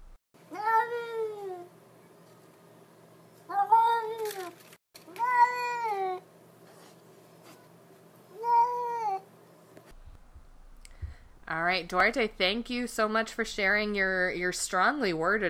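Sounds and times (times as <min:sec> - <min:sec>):
cat meowing with long insistent wavering cries: 0:00.5 - 0:01.7, 0:03.5 - 0:04.5, 0:05.1 - 0:06.2, 0:08.3 - 0:09.2
speech: 0:11.8 - 0:15.4.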